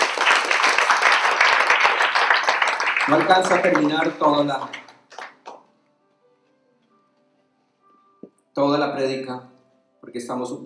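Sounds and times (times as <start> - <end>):
church congregation applauding: 0.0 - 5.7
speech: 3.1 - 4.8, 8.6 - 9.5, 10.1 - 10.6.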